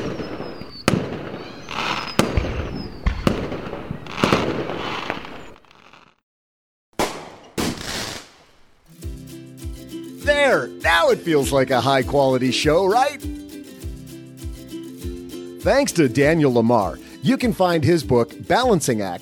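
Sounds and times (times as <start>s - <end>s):
fireworks sound effect bangs and crackles: 0.0s - 6.2s, 7.0s - 8.5s
speech: 10.6s - 13.4s, 15.6s - 19.2s.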